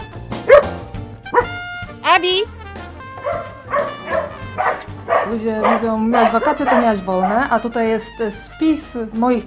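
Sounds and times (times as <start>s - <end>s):
dog barking: 0.5s - 1.7s, 3.1s - 7.5s
speech: 5.3s - 9.4s.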